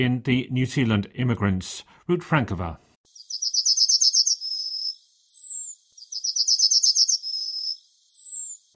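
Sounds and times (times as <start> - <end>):
speech: 0.0 - 2.8
yellowhammer singing: 3.1 - 8.7.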